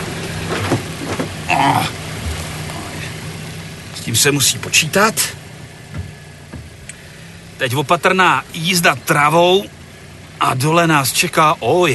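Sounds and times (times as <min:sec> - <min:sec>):
tree branches scraping car bodywork off-road: 0:00.0 - 0:07.5
moving car rumbling off-road: 0:00.0 - 0:11.9
speech: 0:01.6 - 0:02.0, 0:04.1 - 0:05.5, 0:07.6 - 0:09.8, 0:10.4 - 0:11.9.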